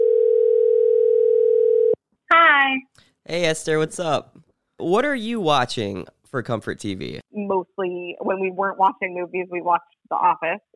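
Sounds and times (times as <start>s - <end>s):
telephone dial tone: 0.0s - 2.0s
speech: 3.3s - 10.7s.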